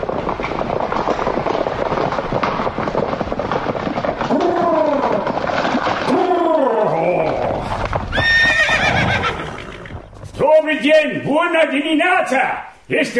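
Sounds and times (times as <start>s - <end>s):
horse-drawn carriage rolling from Bucharest to Ploiești: 0.0s - 9.2s
hooves of horse-drawn carriage clattering: 0.0s - 12.0s
carriage horses whinnying: 4.1s - 10.4s
speech: 11.5s - 13.1s.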